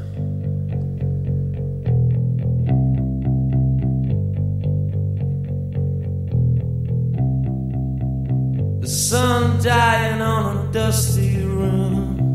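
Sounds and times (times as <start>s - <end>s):
effected chorused guitar chords: 0.0s - 12.3s
solid bass line: 0.0s - 12.3s
indie pop song intro: 8.8s - 12.3s
speech: 9.6s - 11.8s.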